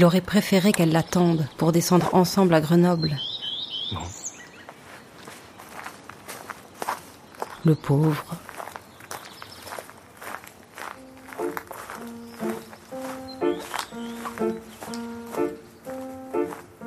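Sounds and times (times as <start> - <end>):
speech: 0.0 - 3.3, 3.9 - 4.2, 7.6 - 8.4
footsteps of a person walking alone: 4.6 - 16.8
repeating melodic tune of plucked notes: 10.9 - 16.8.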